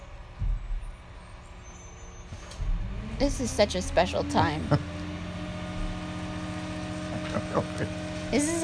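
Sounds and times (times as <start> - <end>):
truck grinding yard waste outside window: 2.6 - 8.6
speech: 3.2 - 5.0, 7.5 - 8.6.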